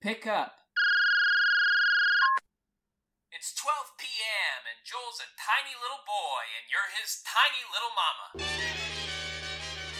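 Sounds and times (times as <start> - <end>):
speech: 0.0 - 0.6, 3.4 - 9.2
telephone ringing with a single sustained electronic tone: 0.8 - 2.4.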